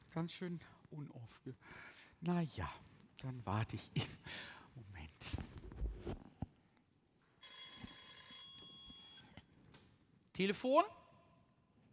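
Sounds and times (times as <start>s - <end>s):
speech: 0.2s - 6.2s, 10.4s - 11.0s
telephone bell ringing: 7.4s - 9.4s.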